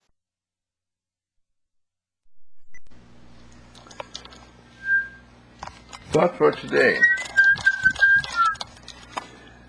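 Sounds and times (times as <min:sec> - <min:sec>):
person whistling one clear note: 0:04.8 - 0:05.2, 0:07.0 - 0:08.6
speech: 0:06.2 - 0:07.1.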